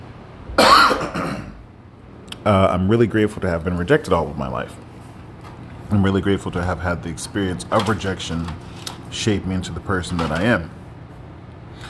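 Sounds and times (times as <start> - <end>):
cough: 0.6 - 1.6
speech: 2.4 - 4.9, 5.9 - 10.8.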